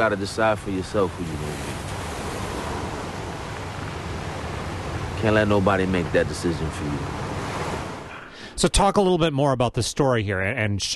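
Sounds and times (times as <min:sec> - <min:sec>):
speech: 0:00.0 - 0:01.7, 0:05.2 - 0:07.2, 0:08.6 - 0:10.9
ocean surf waves: 0:00.0 - 0:08.6.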